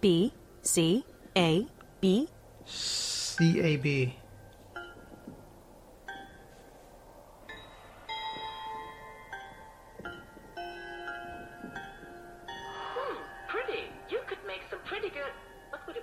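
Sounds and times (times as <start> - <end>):
speech: 0.0 - 4.2
bright bells chiming a sequence of notes: 3.4 - 6.8, 7.4 - 14.5.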